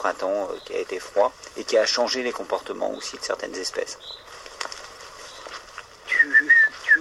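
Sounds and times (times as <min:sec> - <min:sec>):
speech: 0:00.0 - 0:04.4
common redshank piping whistled calls: 0:04.0 - 0:04.3, 0:05.2 - 0:06.9.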